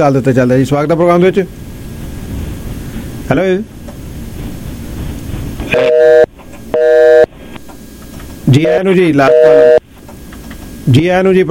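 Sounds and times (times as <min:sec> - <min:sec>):
speech: 0:00.0 - 0:01.6, 0:03.3 - 0:03.8, 0:08.5 - 0:09.8, 0:10.9 - 0:11.4
noisy background: 0:00.0 - 0:11.4
telephone busy signal on a call-in line: 0:05.7 - 0:07.3, 0:09.2 - 0:09.8.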